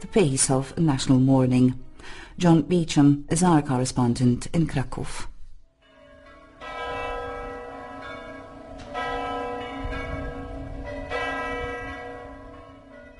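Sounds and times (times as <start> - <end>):
speech: 0.0 - 5.3
large cathedral church bells pealing: 5.8 - 13.1.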